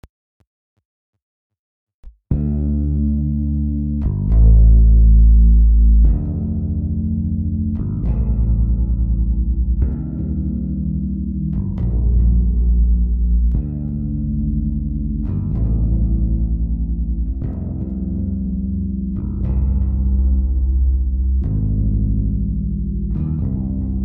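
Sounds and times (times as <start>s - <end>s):
bass tone for falling asleep: 2.3s - 24.0s.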